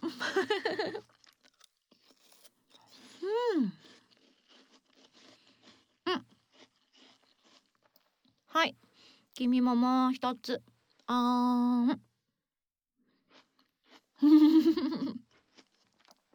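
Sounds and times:
person chewing food while eating: 0:00.7 - 0:09.0, 0:13.2 - 0:16.3
speech: 0:09.4 - 0:12.1, 0:14.2 - 0:15.2.

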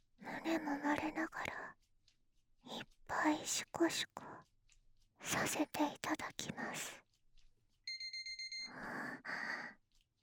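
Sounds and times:
speech: 0:00.4 - 0:01.8, 0:02.6 - 0:04.3, 0:05.2 - 0:07.0, 0:08.7 - 0:09.8
punishment timer alarm electronic beeps: 0:07.9 - 0:08.9.

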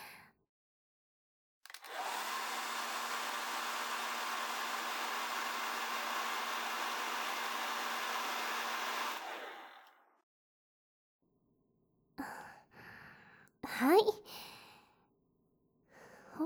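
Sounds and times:
hair dryer blowing: 0:01.7 - 0:10.1
speech: 0:13.8 - 0:14.5.

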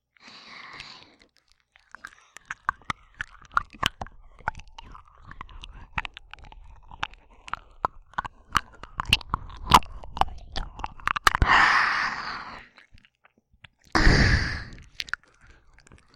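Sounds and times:
ASMR mouth sounds imitating chewing on an ear: 0:00.2 - 0:16.1
breathy sighs: 0:11.4 - 0:12.7, 0:14.0 - 0:14.9.

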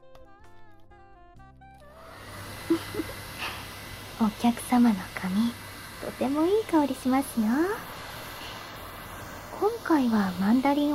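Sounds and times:
hair dryer blowing on a salon customer's hair: 0:01.8 - 0:10.9
speech: 0:04.2 - 0:07.9, 0:09.6 - 0:10.9.

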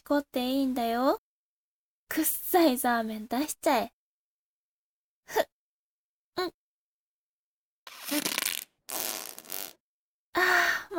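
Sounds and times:
speech: 0:00.1 - 0:01.2, 0:02.1 - 0:04.0, 0:05.3 - 0:05.5, 0:06.4 - 0:06.6, 0:08.1 - 0:08.5, 0:10.4 - 0:10.9
sputtering farts: 0:07.9 - 0:09.8.

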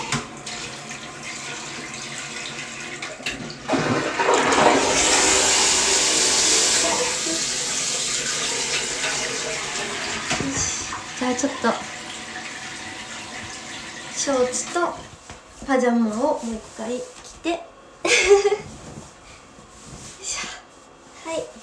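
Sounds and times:
toilet flushing: 0:00.0 - 0:15.1
speech: 0:11.4 - 0:11.9, 0:14.3 - 0:15.0, 0:15.7 - 0:18.7.

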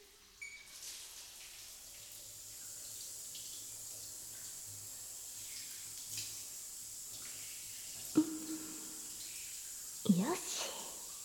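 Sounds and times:
shower water pouring: 0:00.0 - 0:11.2
brief knock or clatter: 0:08.2 - 0:08.8.

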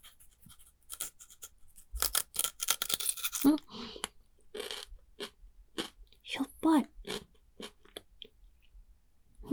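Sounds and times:
crunchy chewing of the heavily salted root end of a carrot: 0:00.0 - 0:06.2, 0:07.0 - 0:08.4
person talking: 0:06.3 - 0:06.9.

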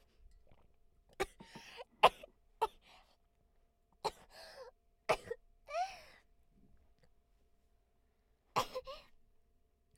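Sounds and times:
person coughing after choking on water: 0:01.2 - 0:02.8, 0:08.6 - 0:09.1.

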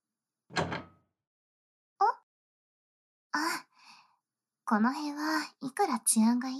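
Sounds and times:
door swinging shut with a rumbling thud: 0:00.5 - 0:01.0
metallic click of a lock being turned from inside: 0:00.6 - 0:00.9
speech: 0:04.7 - 0:06.5.

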